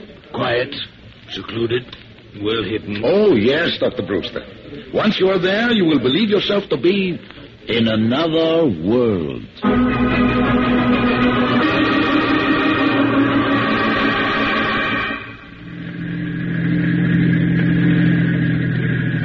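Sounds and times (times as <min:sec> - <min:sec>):
speech: 0:00.5 - 0:10.2
car engine slowing down on a road up a valley: 0:09.7 - 0:19.2.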